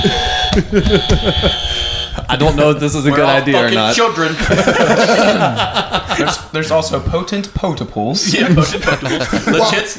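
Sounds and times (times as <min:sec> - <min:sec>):
electronic trivia game player buzzer tone: 0:00.0 - 0:02.4
several people talking and laughing: 0:00.0 - 0:09.9
speech: 0:00.0 - 0:09.9.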